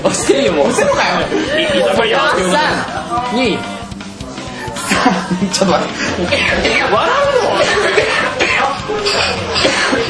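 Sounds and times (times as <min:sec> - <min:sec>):
laughter: 0:00.1 - 0:03.3, 0:04.7 - 0:10.0
speech: 0:00.1 - 0:03.8, 0:04.9 - 0:08.4, 0:09.0 - 0:10.0
person choking and coughing: 0:04.8 - 0:05.3, 0:06.2 - 0:10.0.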